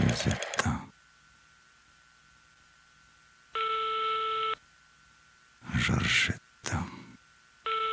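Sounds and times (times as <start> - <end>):
speech: 0.1 - 0.9
electronic telephone ring: 3.5 - 4.5, 7.7 - 7.8.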